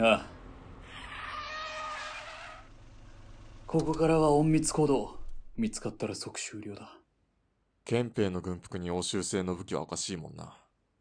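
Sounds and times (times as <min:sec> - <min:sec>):
speech: 0:00.0 - 0:00.3, 0:03.7 - 0:07.0, 0:07.9 - 0:10.6
car tires squealing in a skid: 0:00.8 - 0:04.4.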